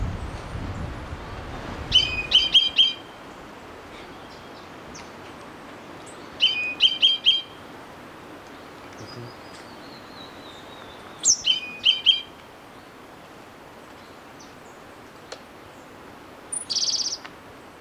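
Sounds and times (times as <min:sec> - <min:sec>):
background hiss: 0:00.0 - 0:17.7
orange-bellied euphonia calling in Ecuador: 0:01.6 - 0:04.6, 0:06.3 - 0:12.4, 0:16.5 - 0:17.3.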